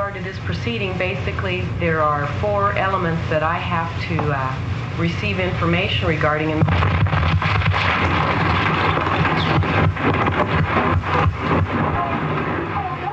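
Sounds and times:
speech: 0:00.2 - 0:08.5
bomb blast captured on a tape recorder: 0:05.8 - 0:13.1.

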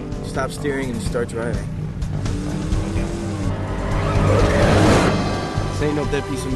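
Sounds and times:
race car engine roaring: 0:00.0 - 0:06.5
speech: 0:00.4 - 0:01.8, 0:05.8 - 0:06.5
race car tires squealing and skidding as the rear slides out: 0:02.2 - 0:06.5.

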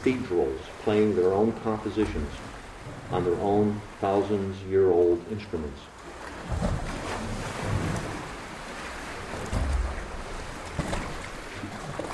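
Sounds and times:
speech: 0:00.0 - 0:05.9
water sloshing in Lake Superior sea caves: 0:00.0 - 0:12.1
waves booming inside Lake Superior sea caves: 0:00.0 - 0:12.1.

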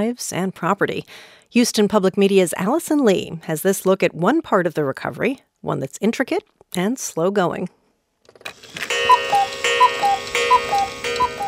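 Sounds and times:
speech: 0:00.0 - 0:07.8
several old clocks ticking: 0:08.8 - 0:11.4.

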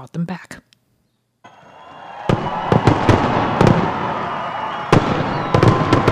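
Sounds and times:
speech: 0:00.0 - 0:00.6
fireworks show exploding overhead: 0:01.5 - 0:06.1.

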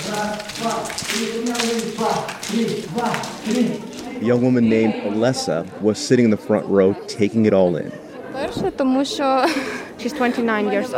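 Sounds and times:
sharp smacks of women practicing slaps in a training session: 0:00.0 - 0:04.1
women's voices calling out and chattering: 0:00.0 - 0:10.9
speech: 0:00.1 - 0:10.9.

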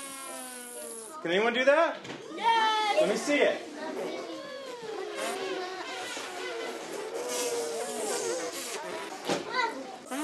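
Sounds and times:
children buzzing lips to learn a brass instrument: 0:00.0 - 0:01.2, 0:03.8 - 0:10.2
speech: 0:01.2 - 0:04.2.

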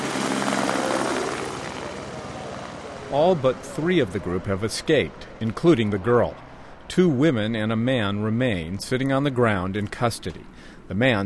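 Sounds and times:
helicopter rotor droning as it flies away: 0:00.0 - 0:08.7
speech: 0:03.1 - 0:11.2.

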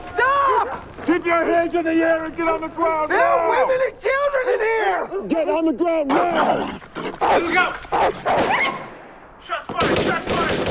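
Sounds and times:
speech: 0:01.1 - 0:08.8
gunfire in a recorded exchange of shots between agents and a besieged group: 0:08.0 - 0:10.7.

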